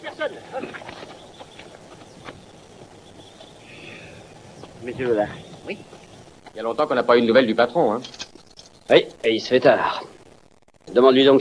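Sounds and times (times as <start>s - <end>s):
speech: 0.0s - 0.9s, 4.8s - 6.0s, 6.6s - 8.2s, 8.9s - 10.1s, 10.9s - 11.3s
horse hooves clip-clopping: 0.0s - 3.6s, 4.3s - 6.8s
steady outdoor hiss: 0.0s - 11.3s.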